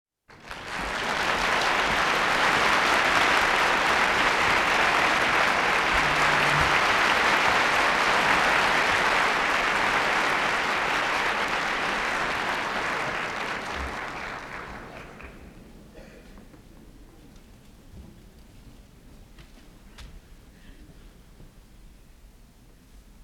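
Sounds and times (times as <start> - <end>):
applause: 0.3 - 15.7.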